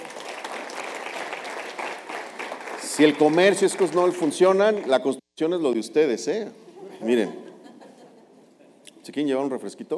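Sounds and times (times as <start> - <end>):
audience applause after a talk: 0.0 - 5.0
speech: 3.0 - 7.4, 9.0 - 9.9
laughter: 6.7 - 8.8.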